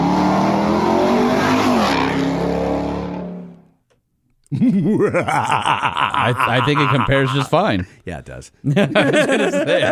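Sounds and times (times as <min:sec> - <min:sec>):
2024 Ford Ranger engine roaring with MagnaFlow exhaust: 0:00.0 - 0:03.8
laughter: 0:04.5 - 0:07.9, 0:08.6 - 0:09.8
speech: 0:04.5 - 0:09.8.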